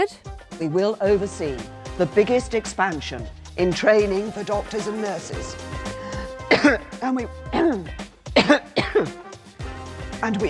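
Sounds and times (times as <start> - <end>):
speech: 0.0 - 5.8, 6.5 - 9.2, 10.2 - 10.4
person coughing harshly: 6.4 - 7.0, 7.6 - 9.2
throat clearing: 6.5 - 6.9, 8.4 - 9.2.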